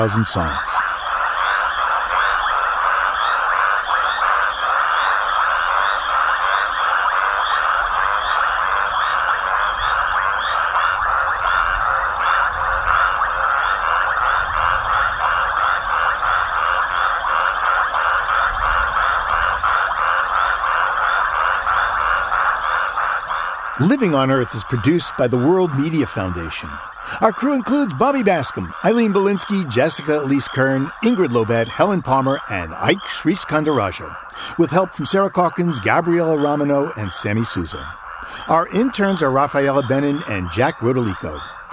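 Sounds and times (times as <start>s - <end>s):
speech: 0.0s - 0.9s, 23.8s - 41.5s
frogs croaking at night: 0.0s - 41.7s
insects trilling at night: 0.0s - 41.7s.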